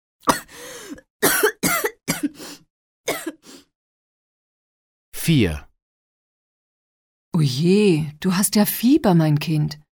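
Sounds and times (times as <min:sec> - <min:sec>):
person coughing harsh rasping coughs: 0:00.2 - 0:00.5, 0:01.2 - 0:02.4, 0:03.1 - 0:03.4
speech: 0:05.3 - 0:05.7, 0:07.4 - 0:09.8.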